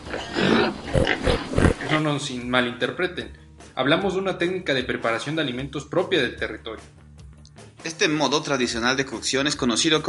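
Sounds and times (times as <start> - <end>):
pig grunting and oinking: 0.0 - 2.1
speech: 2.0 - 7.0, 7.8 - 10.0.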